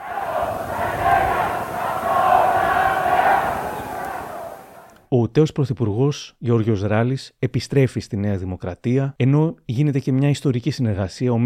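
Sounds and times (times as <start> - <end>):
crowd of party supporters chanting slogans at the Metropolitan Cathedral of Athens: 0.0 - 5.0
speech: 5.1 - 11.4.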